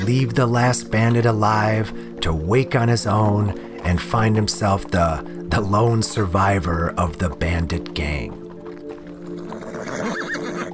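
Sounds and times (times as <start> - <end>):
speech: 0.0 - 8.4
horse hooves clopping while ridden up a ridge: 0.0 - 10.7
horse whinnying: 9.3 - 10.7.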